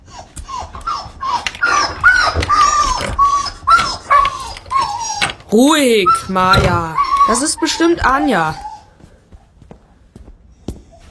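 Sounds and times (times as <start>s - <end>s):
husky barking and yowling: 0.0s - 8.9s
speech: 5.5s - 8.7s.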